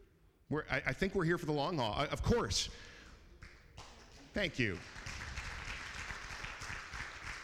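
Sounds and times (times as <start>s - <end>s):
speech: 0.5s - 3.0s, 4.4s - 5.0s
crowd clapping: 3.4s - 7.4s.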